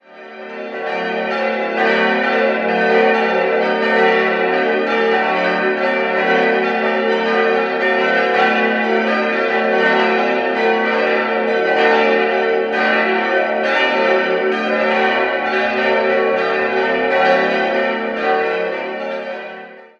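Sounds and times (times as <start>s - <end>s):
six church bells cast in Passau 1972 ringing in Moehrendorf Laurentiuskirche: 0.0s - 19.9s.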